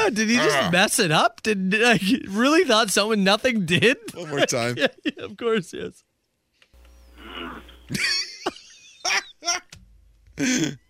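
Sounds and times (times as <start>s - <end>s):
speech: 0.0s - 6.1s, 7.4s - 9.6s, 10.4s - 10.8s
laughter: 3.8s - 5.9s, 7.9s - 9.7s
strained pained grunts and squeals from someone stubbing a toe: 7.2s - 7.7s.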